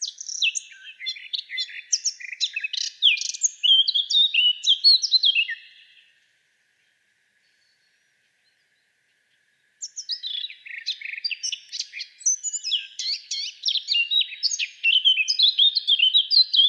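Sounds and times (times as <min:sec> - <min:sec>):
Eurasian blackcap Sylvia atricapilla singing: 0:00.0 - 0:06.0, 0:09.8 - 0:16.6.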